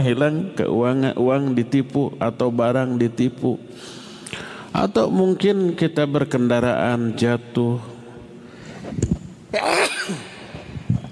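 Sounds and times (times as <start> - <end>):
speech: 0.0 - 4.0, 4.7 - 7.9, 8.8 - 10.3
faint breathy exhale: 3.7 - 4.7
sharp inhale: 3.7 - 4.7, 8.4 - 9.0
person sneezing: 9.5 - 10.5.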